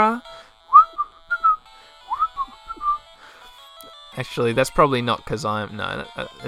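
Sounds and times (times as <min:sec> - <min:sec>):
speech: 0:00.0 - 0:00.3, 0:04.2 - 0:06.4
person whistling a short tune: 0:00.7 - 0:03.1.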